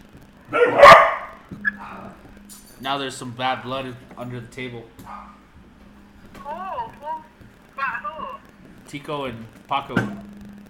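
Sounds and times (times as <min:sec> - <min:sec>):
speech: 0:00.5 - 0:00.9, 0:02.8 - 0:05.4, 0:08.9 - 0:10.6
dog snarling bark in a fight: 0:00.5 - 0:01.4, 0:05.1 - 0:05.4
dog yelping in a fight: 0:00.5 - 0:01.8, 0:06.4 - 0:08.4.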